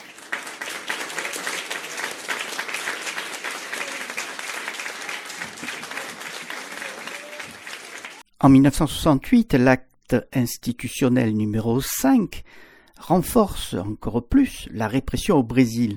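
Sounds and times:
applause for vaccine researchers: 0:00.0 - 0:08.2
speech: 0:08.4 - 0:15.9.

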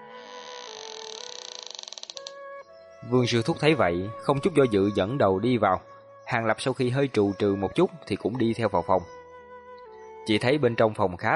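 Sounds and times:
door creaking open by itself: 0:00.0 - 0:02.4
speech: 0:03.0 - 0:09.2, 0:10.3 - 0:11.3.

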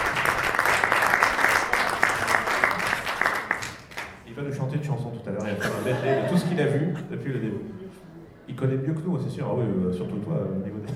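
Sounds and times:
audience applause at a concert: 0:00.0 - 0:04.2
laughter: 0:05.5 - 0:07.2
speech: 0:07.0 - 0:07.8, 0:08.5 - 0:10.9.

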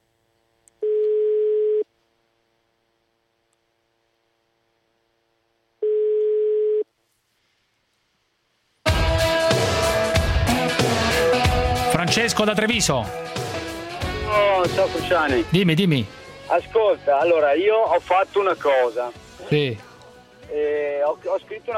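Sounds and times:
telephone line ringing tone on an incoming call: 0:00.8 - 0:01.8, 0:05.8 - 0:06.8
loud music: 0:08.9 - 0:19.8
speech: 0:12.2 - 0:13.4, 0:14.6 - 0:19.9, 0:20.5 - 0:21.7.

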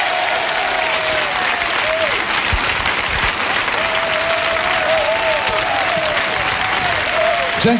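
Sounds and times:
crowd applause for musicians on a music show: 0:00.0 - 0:07.7.

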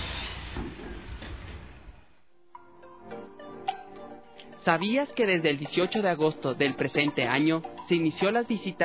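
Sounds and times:
deep rumble of a metro train passing underground beneath the street in Quito: 0:00.0 - 0:02.2
speech: 0:04.6 - 0:08.8.

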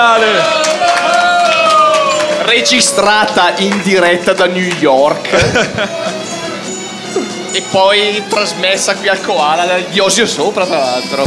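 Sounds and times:
speech: 0:00.0 - 0:00.5, 0:02.5 - 0:06.2, 0:07.1 - 0:11.2
crowd applause and cheering: 0:00.0 - 0:08.4
laughter: 0:01.6 - 0:07.4.

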